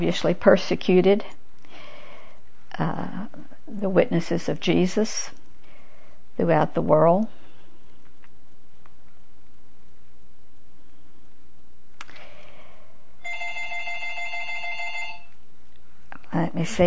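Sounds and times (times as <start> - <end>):
speech: 0.0 - 1.4, 2.8 - 5.4, 6.4 - 7.4, 16.5 - 16.8
faint room noise: 0.0 - 16.8
telephone ringing with a warbling trill at home: 13.2 - 15.4.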